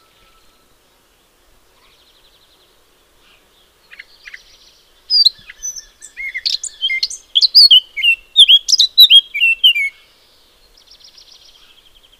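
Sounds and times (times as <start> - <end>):
Eurasian blackcap Sylvia atricapilla song: 0.0 - 0.7, 3.9 - 10.0.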